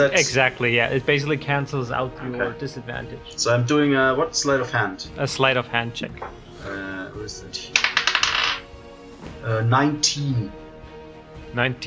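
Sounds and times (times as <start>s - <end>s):
speech: 0.0s - 8.0s, 9.4s - 10.6s, 11.5s - 11.8s
dice rattling and tumbling across a hard table: 7.8s - 8.6s.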